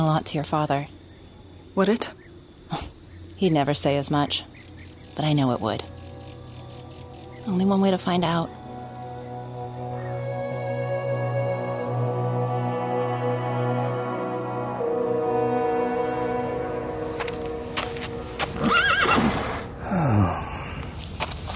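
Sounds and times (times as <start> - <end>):
speech: 0.0 - 1.0, 1.8 - 4.5, 5.2 - 5.9, 7.4 - 8.6
sustained low drone: 0.0 - 21.2
horse's loud wavering neigh: 18.6 - 19.7.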